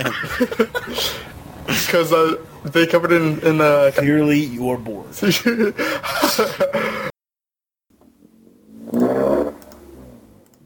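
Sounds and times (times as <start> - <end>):
speech: 0.0 - 7.1
car engine revving: 8.2 - 10.6.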